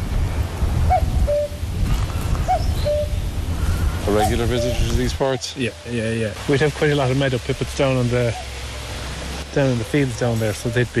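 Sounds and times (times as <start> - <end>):
rushing wind-like outdoor background: 0.0 - 10.9
common cuckoo calling: 0.9 - 1.6, 2.2 - 6.0, 8.2 - 10.9
speech: 4.1 - 8.5, 9.5 - 10.9.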